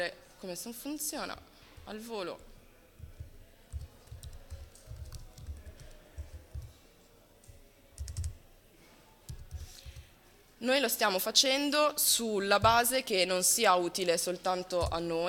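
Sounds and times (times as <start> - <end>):
speech: 0.0 - 2.5, 10.6 - 15.2
typing on a computer keyboard during a live software demonstration: 3.7 - 6.8, 7.4 - 8.4, 9.3 - 10.1.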